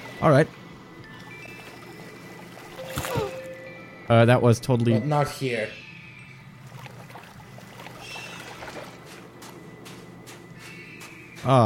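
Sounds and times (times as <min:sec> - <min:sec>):
speech: 0:00.2 - 0:00.6, 0:04.1 - 0:05.8, 0:11.4 - 0:11.6
water splashing: 0:01.5 - 0:03.5, 0:06.6 - 0:09.4.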